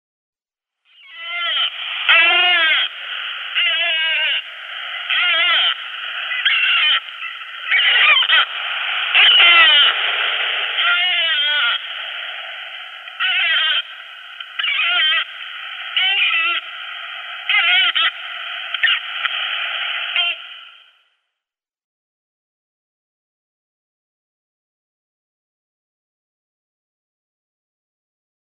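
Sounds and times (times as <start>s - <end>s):
Yellow-nosed Albatross: 0.9s - 20.8s.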